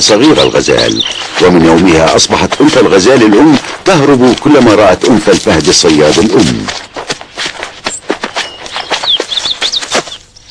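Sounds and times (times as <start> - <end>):
thin chirping bird calls: 0.0 - 3.6, 7.9 - 10.4
speech: 0.0 - 6.9
bird wings flapping: 0.2 - 10.3.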